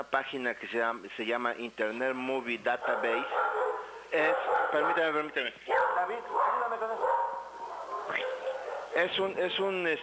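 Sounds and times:
speech: 0.0 - 3.5, 4.1 - 7.3, 9.0 - 10.0
small dog barking at cows passing outside a house: 2.8 - 5.1, 5.7 - 9.2.

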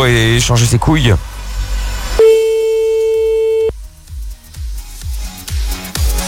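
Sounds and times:
speech: 0.0 - 1.4
rhythmic low thumping music: 1.2 - 6.2
telephone ringback tone on an outgoing call: 2.2 - 3.7.

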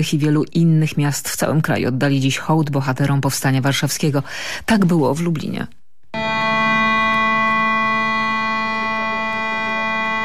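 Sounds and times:
speech: 0.0 - 5.8
civil defence sirens wailing in Lublin for the Warsaw Uprising anniversary: 6.2 - 10.2.

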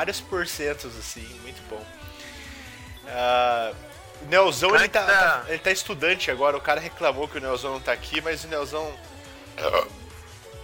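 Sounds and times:
speech: 0.0 - 2.3, 3.1 - 10.0
man burping after drinking cola: 9.6 - 10.0.

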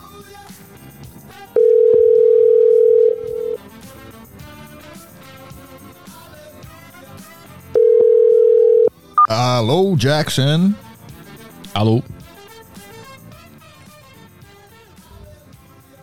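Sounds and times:
telephone dial tone while calling a listener: 1.6 - 3.6, 7.8 - 8.9
speech: 9.6 - 10.8, 11.8 - 12.2.

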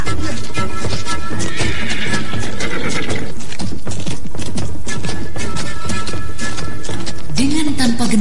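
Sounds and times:
hooves clattering on a village road: 0.0 - 8.2
horse neighing: 1.4 - 3.5.

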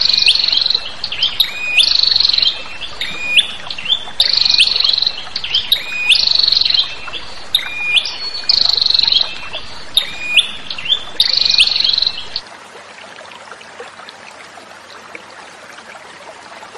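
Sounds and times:
prinia chips and buzzy trills: 0.0 - 12.4.

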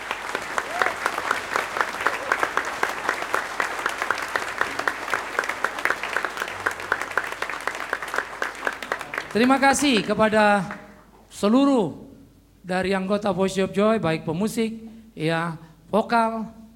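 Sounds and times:
audience applause at a church Christmas service after a choir performance: 0.0 - 10.8
speech: 9.3 - 12.0, 12.6 - 16.6.

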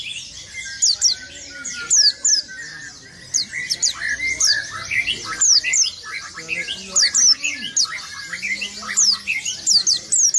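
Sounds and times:
white-eye twittering: 0.0 - 10.3.

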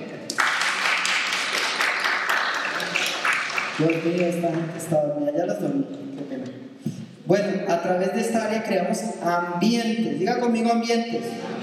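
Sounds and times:
audience applause at a workplace talk: 0.4 - 4.6
speech: 3.8 - 6.5, 7.3 - 11.6.

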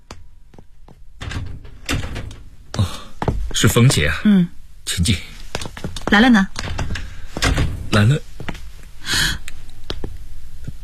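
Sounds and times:
door opening: 1.2 - 4.0, 6.1 - 8.2
speech: 3.6 - 5.3, 6.1 - 6.6, 8.0 - 8.3.

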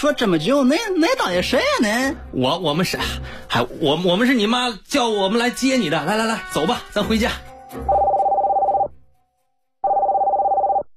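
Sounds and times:
speech: 0.0 - 7.9
telephone ringing with an incoming call: 7.9 - 8.9, 9.8 - 10.9.

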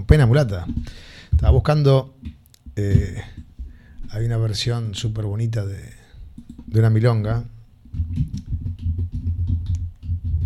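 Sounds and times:
speech: 0.1 - 2.2, 2.8 - 3.4, 4.1 - 8.5
fingers typing on a computer keyboard: 6.4 - 6.7, 7.9 - 10.4.

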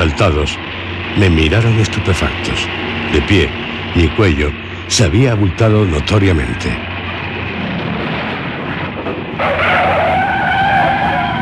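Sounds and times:
coach road noise: 0.0 - 11.4
speech: 0.2 - 6.9
coach tyre squeal while skidding and swerving on a road: 9.4 - 11.4.

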